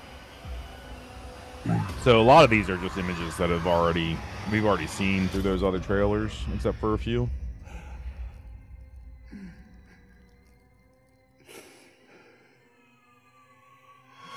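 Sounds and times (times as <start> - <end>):
low steady drone: 0.0 - 14.3
speech: 1.6 - 7.4
heavy breathing with drawn-out sighs in a movie trailer: 7.3 - 13.4.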